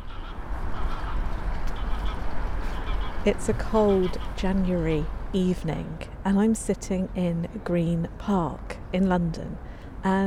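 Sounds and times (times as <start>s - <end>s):
geese honking overhead: 0.0s - 4.9s
steady outdoor rumble: 0.0s - 10.2s
speech: 3.2s - 10.2s.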